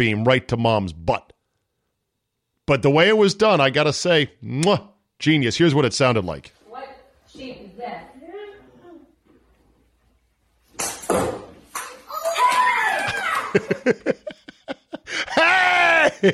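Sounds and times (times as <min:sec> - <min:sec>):
speech: 0:00.0 - 0:01.3, 0:02.7 - 0:06.6, 0:13.5 - 0:14.5, 0:15.1 - 0:16.3
ball hitting a mother with a sharp thump: 0:10.7 - 0:11.9
children screaming: 0:12.1 - 0:13.7, 0:15.3 - 0:16.3
laughter: 0:13.1 - 0:16.3.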